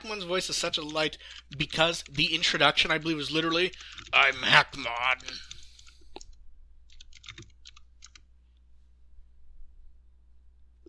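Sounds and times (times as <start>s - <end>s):
steady low electrical hum: 0.0s - 10.8s
speech: 0.1s - 5.5s
faint computer keyboard typing: 0.6s - 8.2s.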